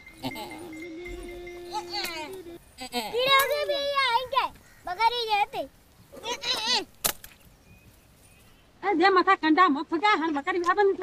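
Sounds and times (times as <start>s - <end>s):
goat bleating: 0.0s - 3.6s
speech: 1.8s - 4.3s, 4.9s - 6.9s, 8.9s - 11.0s.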